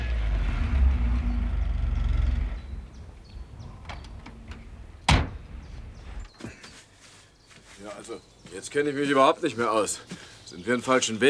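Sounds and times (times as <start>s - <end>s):
heavy tow truck engine rumbling: 0.0s - 6.3s
door slamming: 0.5s - 6.3s
speech: 8.0s - 11.2s.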